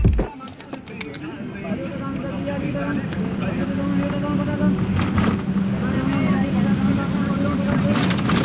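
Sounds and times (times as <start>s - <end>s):
rattles and clicks inside a bus: 0.0s - 1.2s
bus engine droning heard from inside the bus: 0.9s - 8.4s.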